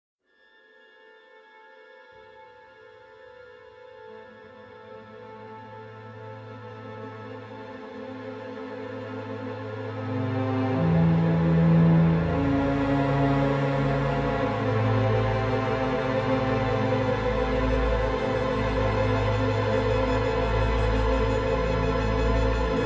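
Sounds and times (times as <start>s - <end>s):
string ensemble: 0.4s - 22.8s.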